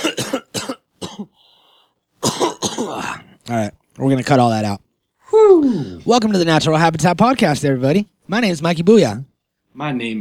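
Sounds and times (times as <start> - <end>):
person coughing hard: 0.0 - 1.4, 2.2 - 3.2
speech: 3.5 - 4.8, 5.4 - 10.1.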